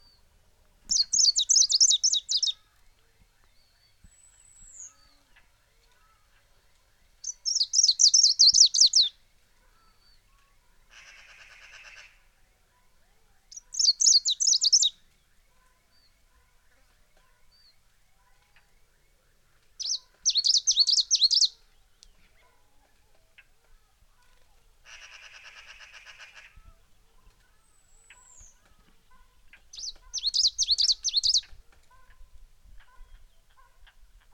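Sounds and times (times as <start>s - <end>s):
greenish warbler singing: 0.9s - 5.9s, 6.6s - 9.2s, 13.4s - 22.7s, 26.7s - 32.2s.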